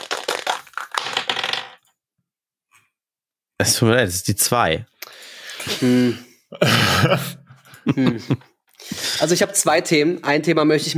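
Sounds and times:
dice rolled and clattering: 0:00.0 - 0:01.8
speech: 0:03.6 - 0:04.9, 0:05.7 - 0:08.5, 0:09.2 - 0:10.9
laughter: 0:06.6 - 0:08.5.

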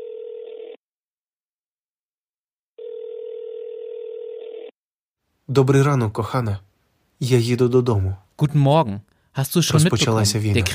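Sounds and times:
electronic telephone ringing at home in Odesa Ukraine: 0:00.0 - 0:00.8, 0:02.8 - 0:04.8
speech: 0:05.5 - 0:10.7.

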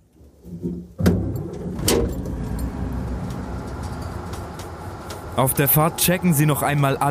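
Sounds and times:
bus engine rumbling: 0:00.4 - 0:07.0
bus door opening with a mechanical clunk: 0:00.5 - 0:06.2
speech: 0:05.4 - 0:07.0.

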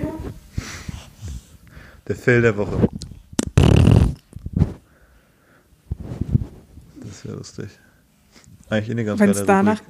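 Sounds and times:
speech: 0:02.1 - 0:03.0, 0:07.2 - 0:07.9, 0:08.7 - 0:09.8
sputtering burst like a baby's fart: 0:02.8 - 0:04.8.

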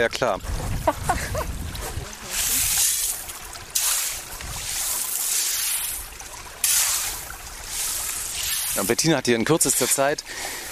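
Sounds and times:
speech: 0:00.0 - 0:01.6, 0:08.8 - 0:10.6
laughter: 0:00.8 - 0:01.5
shovel digging wet sand and gravel in running water: 0:02.3 - 0:06.0, 0:06.6 - 0:10.2.

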